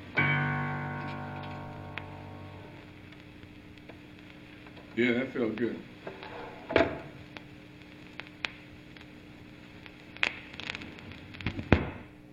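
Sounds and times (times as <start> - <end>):
vinyl record crackle and hiss: 0.0 - 12.3
speech: 5.0 - 5.9.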